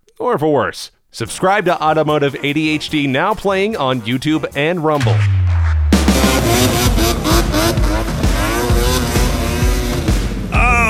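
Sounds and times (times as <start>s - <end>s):
speech: 0.2s - 5.4s
snowmobile engine revving: 6.1s - 10.2s.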